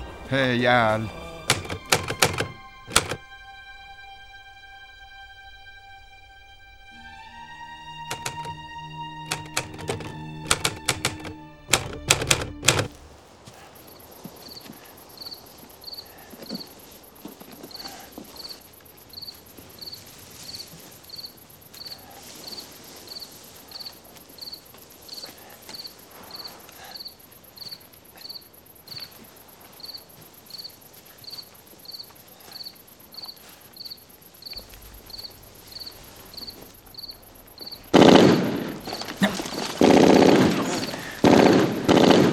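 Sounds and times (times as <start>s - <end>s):
crickets chirping: 0.0s - 42.3s
speech: 0.3s - 1.2s
MG42 machine gun bursts: 1.5s - 3.2s, 9.3s - 12.9s, 37.9s - 42.3s.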